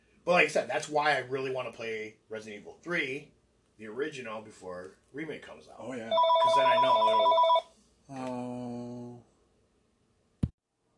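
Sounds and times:
speech: 0:00.2 - 0:08.7
phone ringing right next to the microphone: 0:06.1 - 0:07.7.

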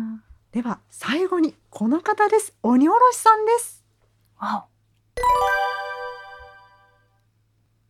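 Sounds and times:
speech: 0:00.5 - 0:03.8, 0:04.4 - 0:05.6
two-tone doorbell chime: 0:05.2 - 0:07.0.

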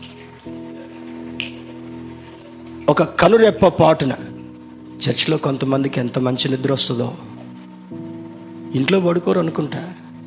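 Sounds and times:
church congregation snapping fingers: 0:00.0 - 0:01.9
sustained keyboard chord: 0:00.0 - 0:10.2
speech: 0:02.9 - 0:04.3, 0:05.0 - 0:07.3, 0:08.7 - 0:10.0.

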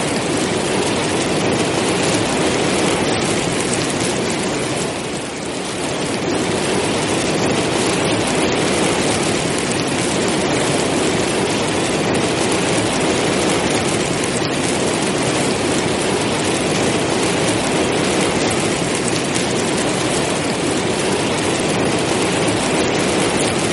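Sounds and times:
heavy rain pouring: 0:00.0 - 0:23.7.

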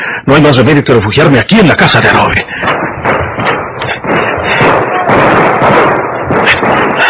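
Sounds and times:
speech: 0:00.2 - 0:02.8
gunfire barrage aimed at a person running for cover: 0:02.1 - 0:07.0.

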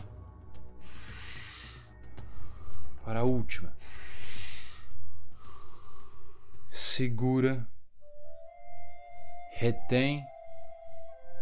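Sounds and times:
deep breath in and out: 0:00.6 - 0:03.0, 0:03.6 - 0:06.8
speech: 0:03.1 - 0:04.1, 0:07.0 - 0:07.7, 0:09.6 - 0:10.3.

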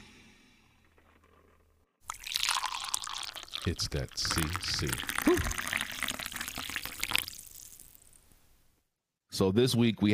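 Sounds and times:
drink pouring into a glass: 0:02.0 - 0:08.2
speech: 0:03.6 - 0:05.8, 0:09.4 - 0:10.1.

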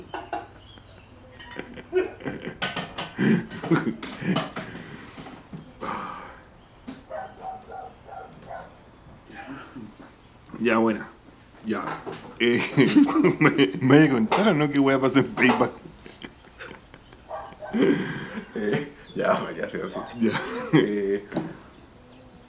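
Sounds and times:
laughter: 0:00.0 - 0:05.2, 0:12.4 - 0:14.2, 0:15.6 - 0:21.4
noise: 0:00.0 - 0:22.4
speech: 0:03.2 - 0:04.6, 0:10.6 - 0:11.1, 0:11.7 - 0:15.8
dog barking: 0:07.1 - 0:08.8, 0:17.3 - 0:17.9, 0:19.9 - 0:20.4.

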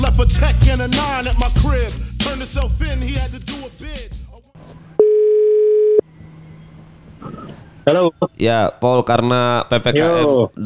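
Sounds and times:
speech: 0:00.2 - 0:04.9, 0:07.2 - 0:10.6
telephone dial tone before call connects: 0:05.0 - 0:06.0.

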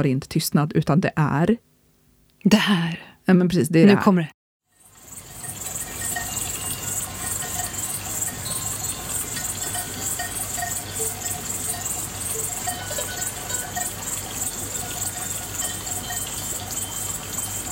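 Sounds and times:
speech: 0:00.0 - 0:01.7, 0:02.4 - 0:04.4
crickets chirping: 0:04.7 - 0:17.7
faint cowbells clinking: 0:04.7 - 0:17.7.

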